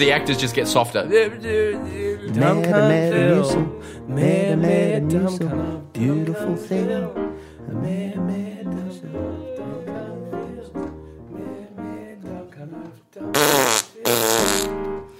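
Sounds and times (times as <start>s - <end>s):
speech: 0.0s - 9.4s
voice imitating a fart: 13.3s - 14.8s.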